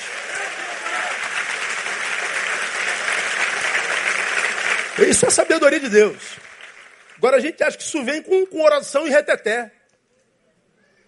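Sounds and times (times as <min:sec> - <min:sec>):
crowd applauding: 0:00.0 - 0:07.7
speech: 0:05.0 - 0:06.5, 0:07.2 - 0:09.8.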